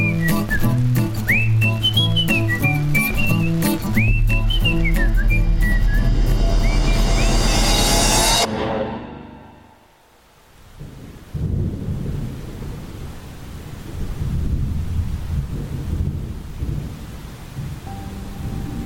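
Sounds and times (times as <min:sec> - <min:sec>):
steady rain: 0:00.0 - 0:07.3, 0:10.1 - 0:18.8
deep rolling thunder: 0:03.9 - 0:09.8, 0:10.8 - 0:13.2, 0:13.8 - 0:18.8.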